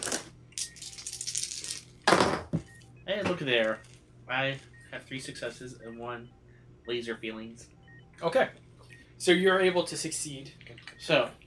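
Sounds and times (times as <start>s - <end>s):
dice clattering and tumbling across a hard tabletop: 0.0s - 1.8s
speech: 3.2s - 8.6s, 9.2s - 11.4s.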